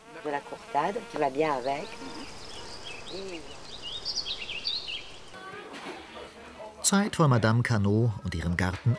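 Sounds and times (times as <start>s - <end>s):
honey bees droning in a garden on an island: 0.0s - 6.9s
speech: 0.2s - 2.4s, 3.1s - 3.6s, 6.8s - 8.9s
faint high bird chirps: 1.6s - 5.5s.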